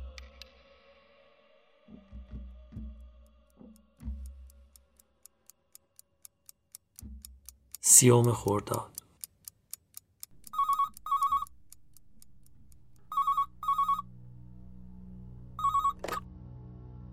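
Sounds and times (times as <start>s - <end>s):
sharp ticking clicks: 3.3s - 16.2s
speech: 8.0s - 9.0s
low steady hum: 10.3s - 16.2s
telephone ringing in warbling double bursts: 10.4s - 16.2s.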